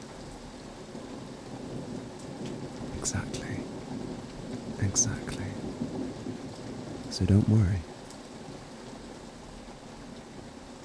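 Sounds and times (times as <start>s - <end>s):
steady rain: 0.0s - 10.8s
low rumbling thunder: 1.0s - 7.5s
speech: 3.0s - 3.4s, 5.0s - 5.3s, 7.2s - 7.9s.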